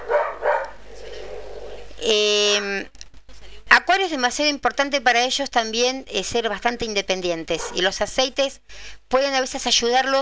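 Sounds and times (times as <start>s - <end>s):
dogs barking: 0.0s - 1.9s, 7.6s - 7.9s
speech: 4.0s - 10.2s.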